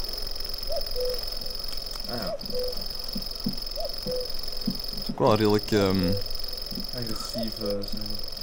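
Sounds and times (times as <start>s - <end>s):
faint outdoor background noise: 0.0s - 8.4s
grasshopper singing a high drill-like buzzing song: 0.0s - 8.4s
cuckoo giving a soft two-note call: 0.6s - 4.8s
speech: 0.8s - 1.5s, 2.1s - 4.5s, 5.2s - 6.3s, 6.9s - 8.3s.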